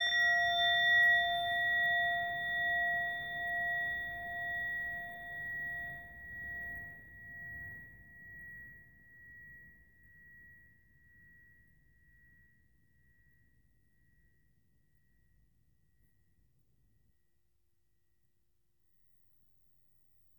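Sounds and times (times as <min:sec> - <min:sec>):
meditation bell: 0:00.0 - 0:15.4.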